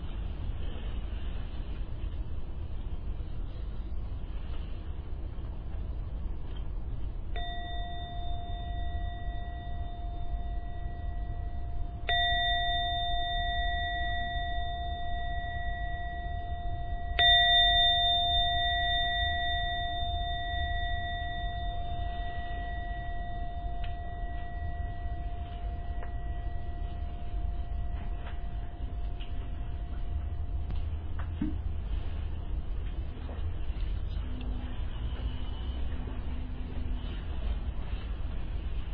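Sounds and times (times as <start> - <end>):
soft steady hum: 0.0 - 38.9
meditation bell chiming: 7.3 - 38.0.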